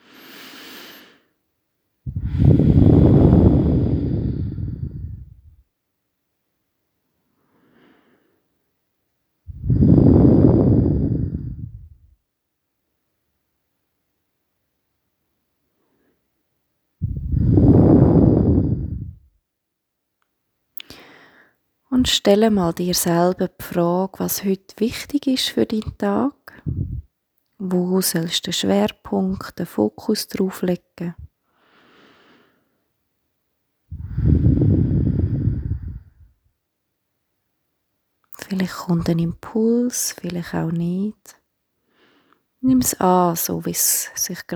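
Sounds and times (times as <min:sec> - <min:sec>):
slow deep breaths into the belly: 0:00.0 - 0:01.4, 0:02.0 - 0:05.6, 0:07.2 - 0:08.6, 0:09.5 - 0:12.2, 0:17.0 - 0:19.3, 0:20.8 - 0:21.6, 0:26.5 - 0:27.1, 0:31.2 - 0:32.9, 0:33.9 - 0:36.5, 0:41.8 - 0:42.6
speech: 0:22.0 - 0:27.0, 0:27.6 - 0:31.3, 0:38.5 - 0:41.4, 0:42.6 - 0:44.5.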